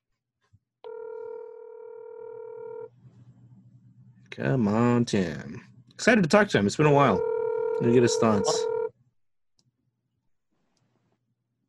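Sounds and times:
telephone ring tone from an unanswered call heard through a handset: 0.9 - 2.9, 7.0 - 8.9
speech: 4.4 - 8.7.

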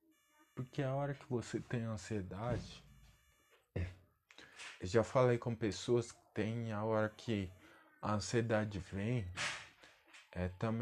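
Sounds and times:
speech: 0.6 - 2.9, 4.8 - 9.4, 10.4 - 10.8
sharp hissy bang from construction work: 9.4 - 9.7.

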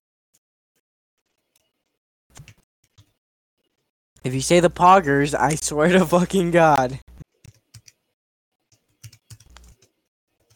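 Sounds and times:
computer keyboard typing: 2.3 - 3.1, 6.8 - 8.0, 8.7 - 10.5
speech: 4.2 - 7.2.

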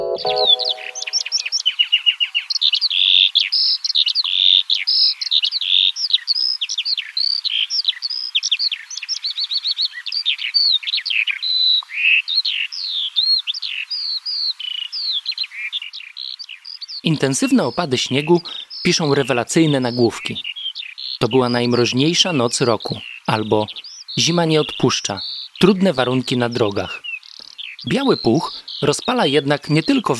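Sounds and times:
birds chirping and singing: 0.0 - 30.1
speech: 0.2 - 0.8, 17.0 - 20.5, 21.2 - 27.0, 27.8 - 30.1.

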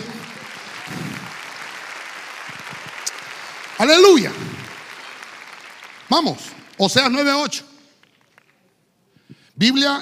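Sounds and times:
large audience at a religious service applauding in praise of God: 0.0 - 8.8
speech: 3.8 - 4.5, 6.1 - 7.7, 9.6 - 10.0.

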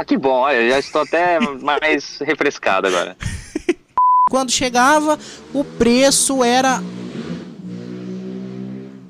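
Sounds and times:
speech: 0.0 - 3.3, 4.3 - 7.1
laughter: 0.7 - 2.0, 2.8 - 3.9
loud motorcycle engine revving: 4.8 - 9.0.

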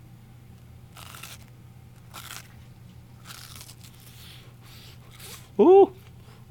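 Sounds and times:
faint hum: 0.0 - 6.5
bites into a fried potato croquette: 0.9 - 2.6, 3.2 - 4.2
speech: 5.6 - 6.0.

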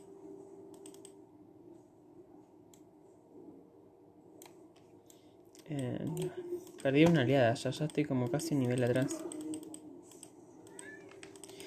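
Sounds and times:
keyboard clicks: 0.7 - 1.2, 4.4 - 11.6
speech: 5.7 - 9.4
cat meowing to be let out: 10.6 - 11.3.

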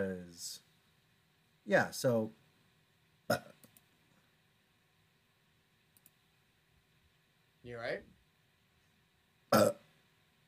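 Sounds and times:
speech: 0.0 - 0.6, 1.6 - 2.4, 3.3 - 3.6, 7.6 - 8.2, 9.5 - 9.8
person burping: 3.3 - 3.6, 9.5 - 9.8.

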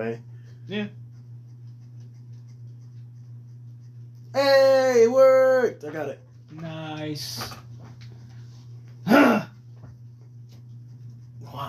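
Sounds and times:
speech: 0.0 - 1.0, 4.4 - 7.6
steady low hum: 0.0 - 11.6
throat clearing: 9.0 - 9.6.

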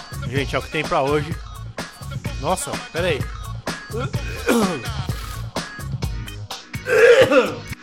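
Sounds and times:
speech: 0.3 - 1.5, 2.4 - 5.0, 6.9 - 7.6
short coughs: 3.9 - 4.8, 6.9 - 7.7
person clearing throat: 3.9 - 4.9, 6.9 - 7.7.

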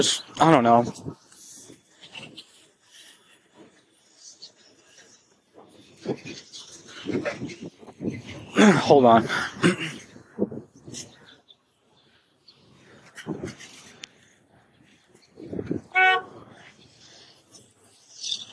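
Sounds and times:
speech: 0.0 - 1.2, 6.1 - 11.1, 13.3 - 13.7, 15.5 - 16.4
car horn honking: 15.9 - 16.4.

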